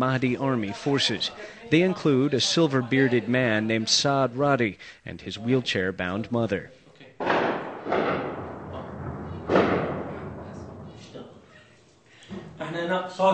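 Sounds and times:
person's voice: 0:00.0 - 0:06.7
speech: 0:00.0 - 0:06.8, 0:13.1 - 0:13.3
heavy booming explosions: 0:07.2 - 0:11.7.

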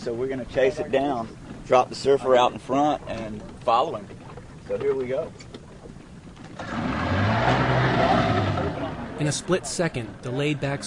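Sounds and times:
speech: 0:00.0 - 0:05.5, 0:09.2 - 0:10.8
motorboat engine revving and accelerating: 0:06.4 - 0:10.8.

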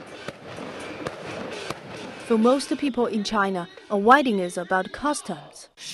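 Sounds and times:
wedding fireworks crackling: 0:00.0 - 0:02.8
speech: 0:02.3 - 0:05.8.

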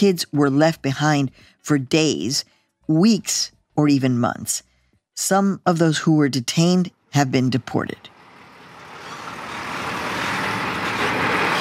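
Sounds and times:
speech: 0:00.0 - 0:08.1
huge truck rumbling past: 0:08.0 - 0:11.5.

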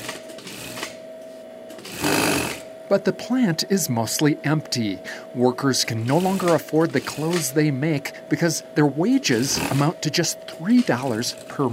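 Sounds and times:
industrial sewing machine stitching polyester fabric for jerseys at a textile plant in Caracas: 0:00.0 - 0:01.0, 0:01.7 - 0:02.7, 0:06.0 - 0:07.6, 0:09.4 - 0:10.0
speech: 0:02.9 - 0:11.7.

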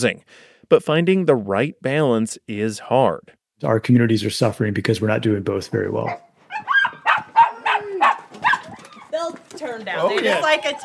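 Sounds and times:
speech: 0:00.0 - 0:06.8, 0:09.6 - 0:10.8
two dogs barking at a house in Missoula: 0:06.0 - 0:09.1.

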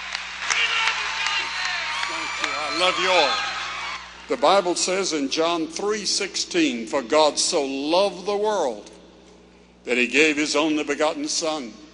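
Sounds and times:
stadium crowd applauding: 0:00.0 - 0:04.5
speech: 0:02.4 - 0:03.5, 0:04.3 - 0:09.0, 0:09.8 - 0:11.8.

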